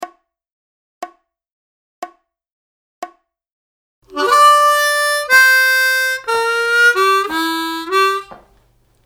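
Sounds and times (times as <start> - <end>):
harmonica glissando licks: 4.1 - 8.6.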